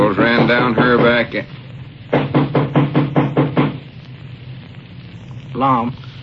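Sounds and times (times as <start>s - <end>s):
loud knocking on a door: 0.2s - 1.2s, 2.1s - 3.8s
speech: 0.5s - 2.2s, 5.6s - 6.0s.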